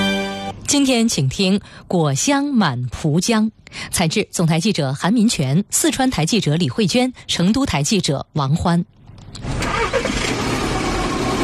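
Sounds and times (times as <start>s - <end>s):
speech: 0.7s - 9.5s
car engine starter crank catching into idle before driving off: 9.4s - 11.4s.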